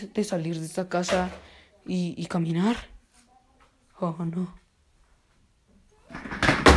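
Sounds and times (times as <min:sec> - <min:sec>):
speech: 0:00.0 - 0:02.9, 0:04.0 - 0:04.6
chair clattering on the floor as it is knocked over: 0:06.1 - 0:06.7.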